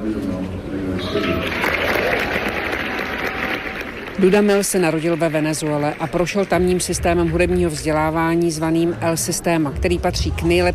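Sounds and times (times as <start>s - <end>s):
orchestra musicians cheering with excited voices: 1.0s - 6.2s
orchestra musicians clapping: 1.0s - 8.1s
speech: 4.2s - 10.7s.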